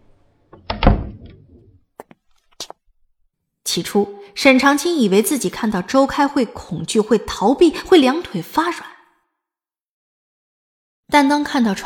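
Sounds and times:
hospital room door pushed open: 0.6s - 1.8s
speech: 3.7s - 8.9s, 11.1s - 11.8s.

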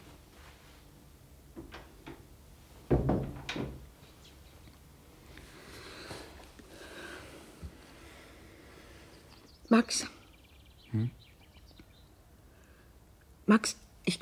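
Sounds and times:
quiet shuffling: 0.0s - 2.9s, 3.8s - 9.5s
hiss: 0.0s - 14.2s
door pulled shut with a sharp thud: 2.9s - 3.9s
speech: 9.7s - 10.2s, 10.9s - 11.2s, 13.5s - 14.2s.

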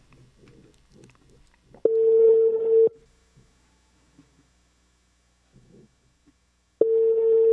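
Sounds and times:
telephone ringback tone: 1.9s - 3.0s, 6.8s - 7.5s.

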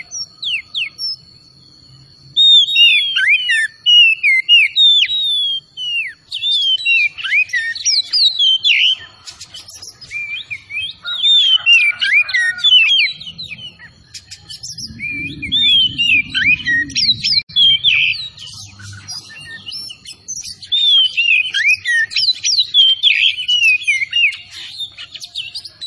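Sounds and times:
Oriental magpie-robin of the Tretes type singing vigorously: 2.3s - 25.8s
low rumble: 12.8s - 19.4s.

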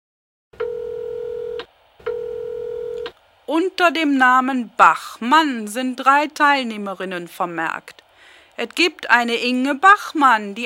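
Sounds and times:
telephone line tones on a call to a directory information service: 0.6s - 3.1s
speech: 3.5s - 8.0s, 8.6s - 10.6s.

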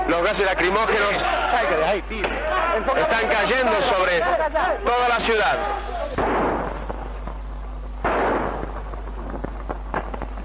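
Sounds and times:
speech: 0.2s - 6.5s
police officer's .45 pistol gunshots amid tear-gas unrest in Córdoba streets: 6.1s - 7.2s, 8.0s - 10.4s.

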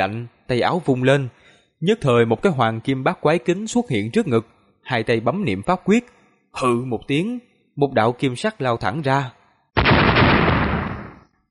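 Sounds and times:
speech: 0.0s - 9.4s
loud explosion sound effect in a fantasy audio drama: 9.8s - 11.3s.

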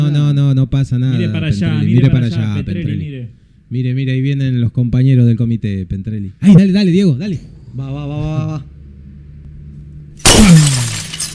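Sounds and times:
speech: 0.8s - 8.7s
glass shattering: 10.2s - 11.3s
rattle of glass fragments: 10.2s - 11.3s.

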